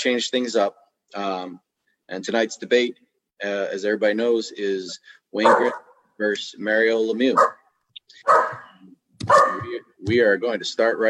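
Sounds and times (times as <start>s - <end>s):
speech: 0.0s - 7.5s, 8.1s - 11.0s
dog barking: 5.4s - 6.0s, 7.4s - 9.7s.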